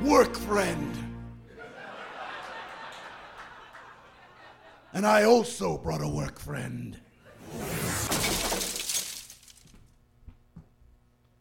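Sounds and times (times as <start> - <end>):
speech: 0.2 - 1.1, 4.9 - 7.7
laughter: 1.5 - 5.0
crash through a boat's cabin top: 7.4 - 9.8
debris shattering and splintering: 7.8 - 9.8
debris pieces clinking and knocking as they settle: 8.1 - 9.8.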